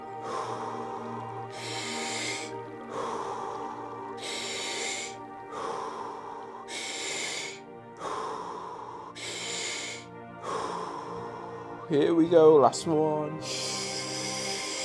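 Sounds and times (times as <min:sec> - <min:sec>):
deep breaths during a guided breathing exercise: 0:00.0 - 0:11.9, 0:13.4 - 0:14.8
steady low musical drone: 0:00.0 - 0:14.8
speech: 0:11.9 - 0:13.7.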